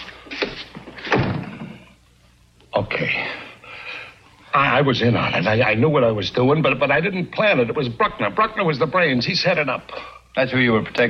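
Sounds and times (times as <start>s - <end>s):
door shutting with a solid thud: 0.4s - 1.8s
speech: 2.8s - 3.5s, 4.5s - 11.0s.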